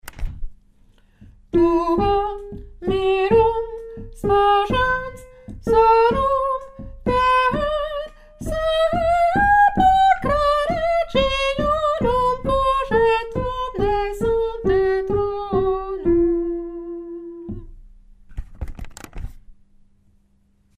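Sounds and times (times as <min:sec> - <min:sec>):
soprano singing: 0:01.5 - 0:17.7.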